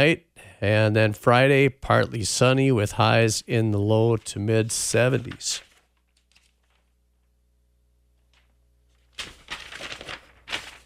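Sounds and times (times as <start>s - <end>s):
speech: 0.0s - 5.7s
papers shuffling: 5.0s - 7.0s, 8.2s - 10.8s.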